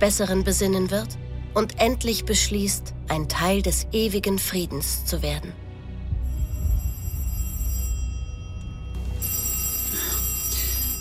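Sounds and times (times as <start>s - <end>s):
speech: 0.0s - 5.6s
low rumbling background: 0.0s - 11.0s
telephone bell ringing: 6.3s - 11.0s.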